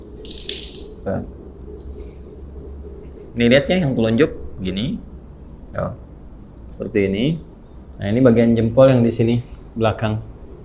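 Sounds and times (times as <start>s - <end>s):
water poured onto a face during ritual ablution washing: 0.0s - 1.1s, 1.8s - 2.2s
water dripping: 0.0s - 2.4s
speech: 1.0s - 1.4s, 3.4s - 5.1s, 5.7s - 6.0s, 6.8s - 10.3s.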